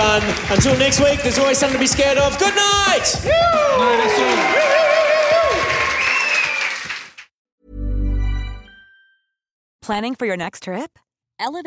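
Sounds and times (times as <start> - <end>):
speech: 0.0 - 5.0, 9.9 - 11.6
live audience applause: 0.0 - 7.3
audience cheers and whistles: 3.3 - 7.1.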